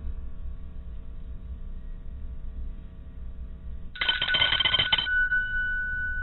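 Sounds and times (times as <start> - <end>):
steady low hum: 0.0 - 6.2
short electronic telephone ring: 4.0 - 6.2.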